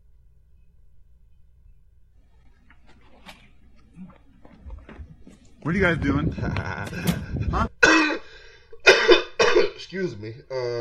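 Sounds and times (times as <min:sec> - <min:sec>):
speech: 0:05.6 - 0:07.7, 0:09.9 - 0:10.7
breathy laugh-like voicing: 0:06.0 - 0:08.9
sharp harsh coughs: 0:07.8 - 0:09.8.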